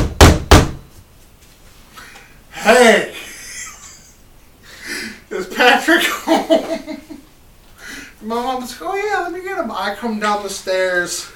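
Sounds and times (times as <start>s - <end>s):
heavy knocks on a door: 0.0s - 0.9s
speech: 2.6s - 3.2s, 5.7s - 7.1s, 8.2s - 11.3s.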